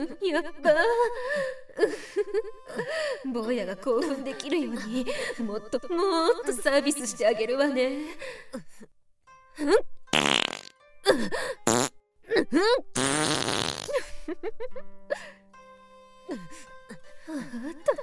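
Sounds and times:
speech: 0.0 - 9.0, 9.6 - 10.4, 11.1 - 15.4, 16.3 - 16.7, 17.3 - 18.0
loud farts: 10.1 - 10.7, 11.7 - 12.0, 13.0 - 14.0.

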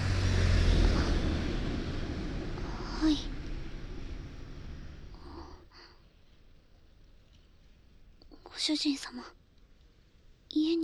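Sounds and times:
car engine roar: 0.0 - 5.5
road noise: 0.0 - 7.2
speech: 3.0 - 3.3, 8.7 - 9.4, 10.6 - 10.8.

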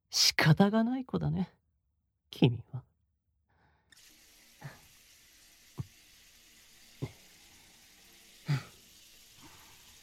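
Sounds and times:
speech: 0.1 - 1.6, 2.3 - 2.9
shower water spraying: 3.9 - 10.0.

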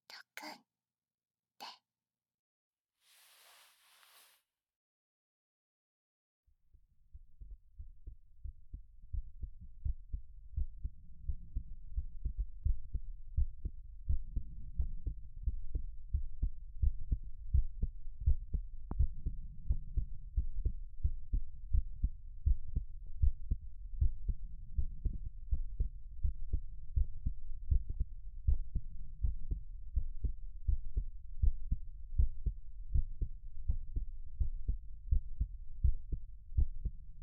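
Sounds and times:
speech: 0.4 - 0.7
human heartbeat thumping: 8.4 - 37.2.

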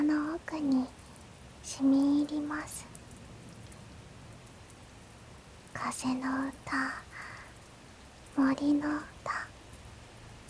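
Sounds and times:
steady rain on an umbrella: 0.0 - 10.4
speech: 0.4 - 1.0, 1.6 - 2.9, 5.8 - 7.1, 8.4 - 9.4.

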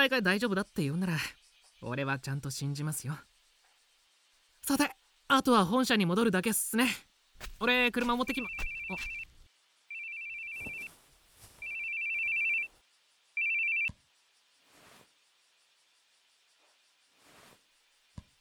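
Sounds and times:
speech: 0.0 - 3.3, 4.6 - 9.2
telephone ringing with an incoming call from the company head office: 8.3 - 9.2, 9.9 - 10.9, 11.6 - 12.7, 13.4 - 13.9
soft rustles: 10.4 - 12.8, 14.6 - 15.2, 16.6 - 17.7.

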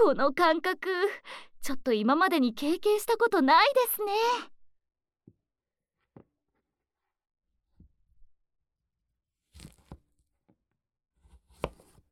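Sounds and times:
speech: 0.0 - 4.5
knife cutting through a raw pumpkin: 9.5 - 10.2, 11.2 - 12.1.

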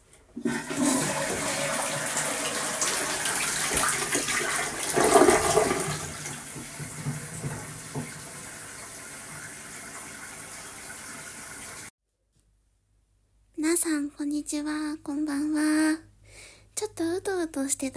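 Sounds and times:
toilet flushing and bowl refilling: 0.3 - 11.9
speech: 14.4 - 16.1, 16.8 - 17.9.

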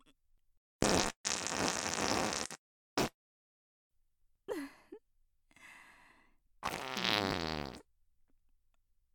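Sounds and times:
farts: 0.8 - 3.2, 6.6 - 7.9.

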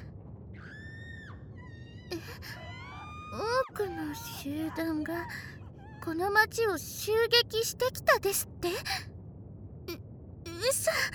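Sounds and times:
low steady rumble: 0.0 - 11.1
distant people screaming: 0.5 - 6.2
speech: 3.3 - 9.1, 10.7 - 11.1.

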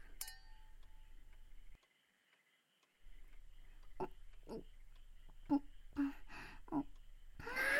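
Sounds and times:
wine glasses clinking in a toast in a tatami-floored room: 0.2 - 0.7
mouth noises: 3.7 - 7.6.

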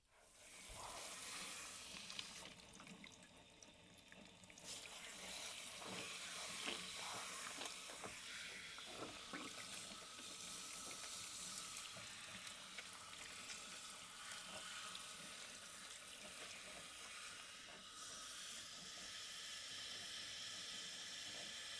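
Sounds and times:
water running from a tap to rinse something off: 0.2 - 21.7.

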